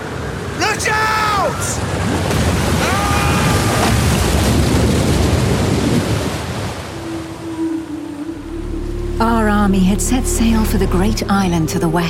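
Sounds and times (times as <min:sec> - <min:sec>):
waves crashing in a sea storm: 0:00.0 - 0:09.1
gusting wind in a sea storm: 0:00.0 - 0:12.0
speech: 0:00.8 - 0:02.4, 0:09.7 - 0:12.0.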